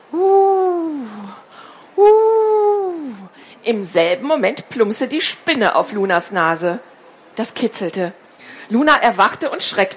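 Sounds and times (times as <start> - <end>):
person imitating owl hoots: 0.0 - 1.4, 2.0 - 3.3
speech: 2.0 - 2.3, 3.7 - 9.9.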